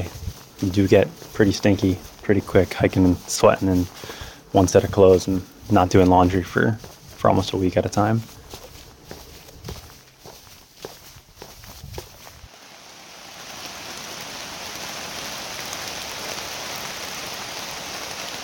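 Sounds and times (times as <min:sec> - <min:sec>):
speech: 0:00.0 - 0:08.4
rain pattering on a surface: 0:00.0 - 0:10.4, 0:12.2 - 0:18.4
footsteps crunching: 0:00.0 - 0:12.6.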